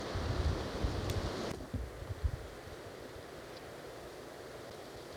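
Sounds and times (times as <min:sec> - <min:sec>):
strong wind blowing through a dry wash near a canyon head: 0:00.1 - 0:02.4.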